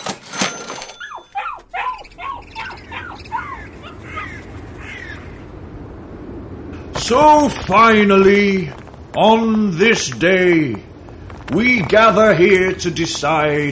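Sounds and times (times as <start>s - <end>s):
dogs barking muffled in a sack: 0.8s - 5.4s
speech: 7.1s - 10.9s, 11.5s - 13.7s.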